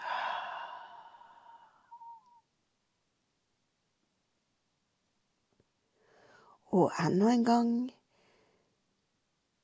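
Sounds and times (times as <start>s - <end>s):
slow breathy exhale through the mouth: 0.0s - 2.2s
soft breath: 0.0s - 2.4s, 5.9s - 6.6s, 8.1s - 8.8s
speech: 6.7s - 8.0s.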